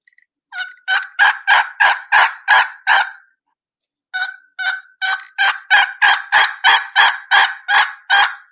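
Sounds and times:
hunter's turkey call making hen turkey yelps: 0.5 - 3.3, 4.2 - 8.5.

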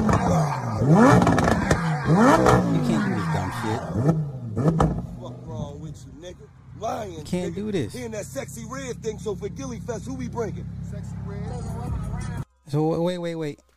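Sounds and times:
Lamborghini Gallardo STO sports car engine starting and revving: 0.0 - 12.4
speech: 0.9 - 1.4, 2.1 - 4.2, 6.0 - 13.7.

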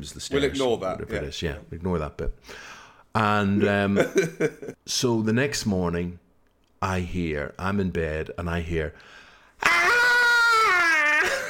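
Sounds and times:
speech: 0.0 - 6.2, 6.8 - 9.9
human voice imitating a banshee-like wailing squeal: 9.6 - 11.4.

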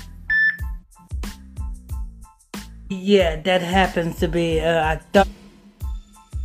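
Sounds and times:
electronic phone beep during a phone call: 0.3 - 0.7
speech: 2.9 - 5.4.

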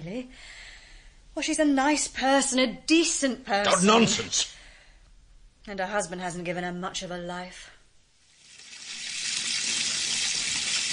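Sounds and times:
speech: 0.0 - 0.7, 1.4 - 4.6, 5.6 - 7.7
water running steadily from a tap into a bath: 8.3 - 10.9.

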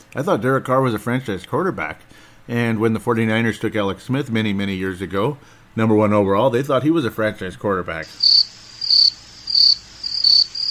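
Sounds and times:
speech: 0.1 - 9.0
crickets chirping: 8.0 - 10.6.

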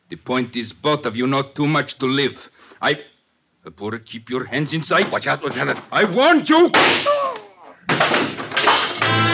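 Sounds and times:
speech: 0.1 - 7.2
heavy body crashing into a table: 6.7 - 7.1, 7.9 - 9.2.

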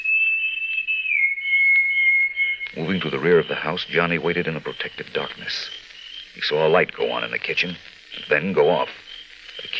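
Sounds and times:
sustained high human whistle: 0.0 - 3.9
speech: 2.7 - 5.8, 6.4 - 9.7.

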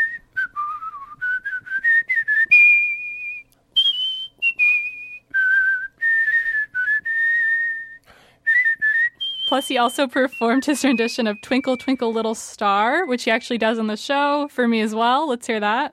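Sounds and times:
solo whistling of a national anthem: 0.0 - 12.3
short breaths between whistled phrases: 8.0 - 8.5
speech: 9.5 - 15.9.

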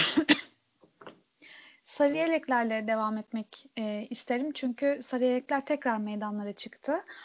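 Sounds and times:
person coughing: 0.0 - 0.5
speech: 2.0 - 7.2.

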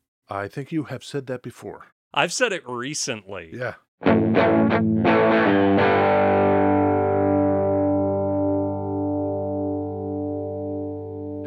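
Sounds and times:
speech: 0.3 - 6.2
electric guitar played through a reverb and delay pedal: 4.0 - 11.4.

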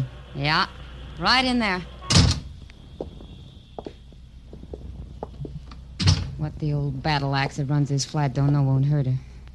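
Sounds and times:
speech: 0.4 - 1.9, 6.6 - 9.3
flat door closing off a drafty hallway: 2.1 - 2.5, 6.0 - 6.4
shuffling: 2.6 - 5.9.

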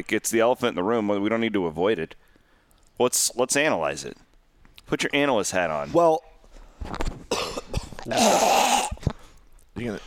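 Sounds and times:
speech: 0.0 - 2.3, 3.0 - 4.3, 4.9 - 7.1, 8.0 - 9.0, 9.8 - 10.0
person coughing: 7.3 - 9.0.

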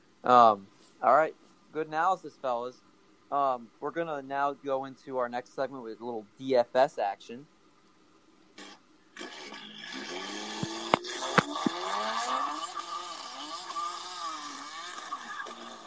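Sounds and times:
speech: 0.2 - 7.5
cars racing by with roaring engines: 10.0 - 15.8.

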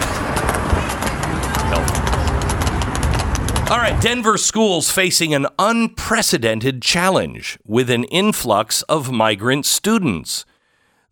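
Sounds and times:
several horses' hooves clattering across a hard surface: 0.0 - 4.5
steady rumble of traffic: 0.0 - 5.7
wind: 0.0 - 5.9
speech: 3.7 - 10.5.

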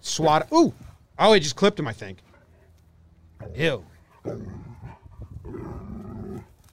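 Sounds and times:
speech: 0.2 - 2.3, 3.4 - 5.9
Labrador barking and growling: 3.4 - 6.6.

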